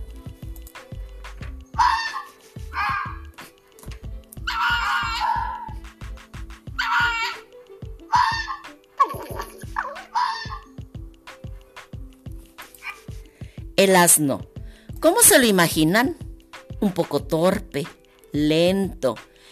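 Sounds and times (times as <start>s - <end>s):
fox giving harsh raspy screams and shrill yelping calls: 1.8s - 3.2s, 4.5s - 5.8s, 6.8s - 7.5s, 8.1s - 9.2s, 9.8s - 10.7s
speech: 13.8s - 16.2s, 16.8s - 19.3s.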